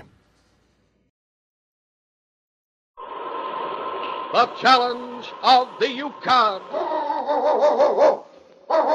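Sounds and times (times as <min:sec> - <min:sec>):
speech: 0:04.3 - 0:08.9
husky lead dog barking in howling calls: 0:06.7 - 0:08.9.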